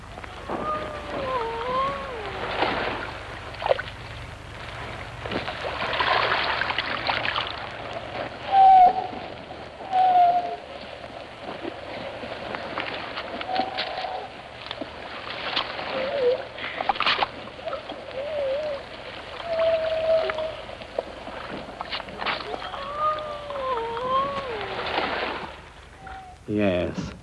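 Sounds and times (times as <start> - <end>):
surf: 0.0 - 27.2
wind: 0.0 - 27.2
Atlantic grey seals singing in wavering moans: 0.1 - 3.4, 8.4 - 10.7, 13.4 - 14.4, 15.8 - 16.7, 17.6 - 21.0, 22.1 - 26.5.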